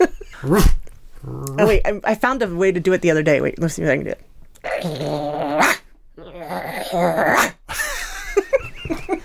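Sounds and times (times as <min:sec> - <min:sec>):
speech: 0:00.0 - 0:00.8, 0:01.6 - 0:05.7, 0:06.9 - 0:07.6
person growling and snarling in a high strained voice imitating an angry chihuahua: 0:00.3 - 0:01.8, 0:04.6 - 0:07.6.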